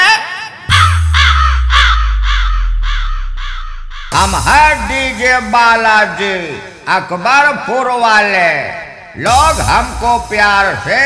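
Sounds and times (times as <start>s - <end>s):
crow cawing: 0.7s - 3.7s
deep continuous bass rumble: 0.7s - 6.8s, 9.3s - 10.8s
speech: 4.2s - 11.0s.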